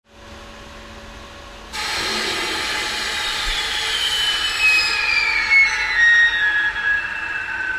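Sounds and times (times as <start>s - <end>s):
fast heavy air blast: 1.8s - 7.6s.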